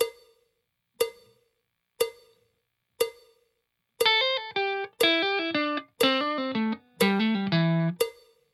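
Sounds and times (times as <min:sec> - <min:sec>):
slow blues guitar tricks: 0:04.0 - 0:08.0.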